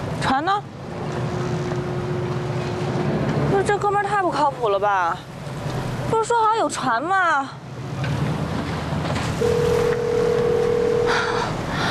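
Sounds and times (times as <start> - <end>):
faint wash of water: 0.0 - 11.9
outdoor wind: 0.0 - 11.9
speech: 0.2 - 0.8, 3.6 - 7.6
phone ringback tone: 9.4 - 11.5.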